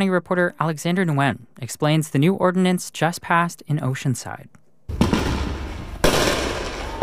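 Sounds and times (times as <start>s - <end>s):
speech: 0.0s - 5.1s
illegal fireworks bangs in residential backyards: 4.9s - 7.0s.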